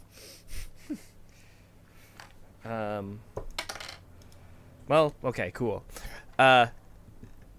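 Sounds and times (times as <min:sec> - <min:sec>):
speech: 0:02.6 - 0:03.5, 0:04.9 - 0:06.8
dice clattering onto a tabletop: 0:03.6 - 0:04.0.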